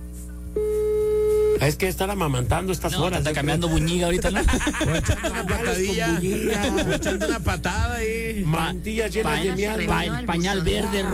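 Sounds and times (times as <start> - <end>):
low hum: 0.0 - 11.1
telephone busy signal while calling someone: 0.6 - 1.6
speech: 1.6 - 11.1
laughter: 4.0 - 8.0, 9.3 - 11.1.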